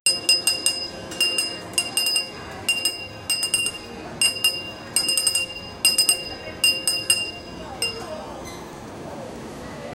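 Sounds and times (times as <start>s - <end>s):
store background sound: 0.0s - 9.9s.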